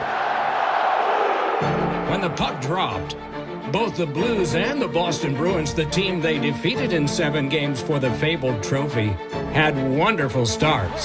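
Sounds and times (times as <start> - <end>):
large arena crowd roaring and cheering at banner raising: 0.0 - 3.0
speech: 1.6 - 11.0.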